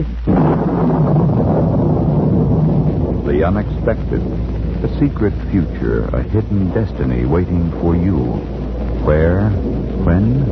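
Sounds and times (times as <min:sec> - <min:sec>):
wind and storm noise: 0:00.0 - 0:10.5
speech: 0:03.5 - 0:10.5.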